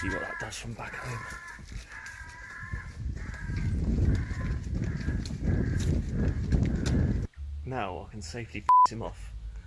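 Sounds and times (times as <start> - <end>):
speech: 0.0 - 2.0, 7.7 - 9.4
crow-like screeching call: 0.0 - 6.8.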